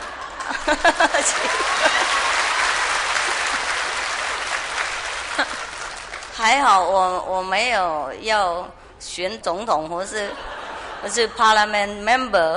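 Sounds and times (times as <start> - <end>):
people chuckling and laughing: 0.0 - 6.0, 10.1 - 11.7
audience clapping: 0.0 - 6.9
speech: 0.7 - 2.1, 6.4 - 12.5.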